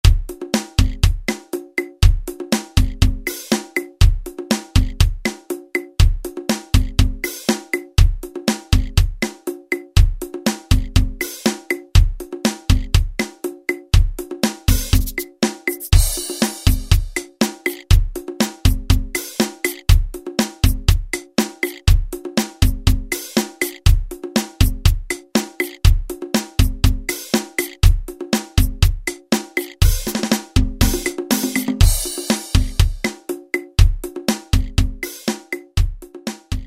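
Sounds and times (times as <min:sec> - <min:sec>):
Latin preset pattern on Alesis SR-16 drum machine: 0:00.0 - 0:36.6.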